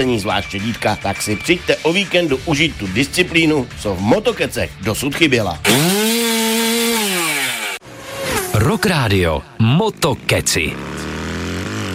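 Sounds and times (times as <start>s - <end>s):
speech: 0.0s - 6.0s, 8.8s - 11.2s
chainsaw revving and cutting into wood: 5.6s - 8.8s, 10.7s - 11.9s.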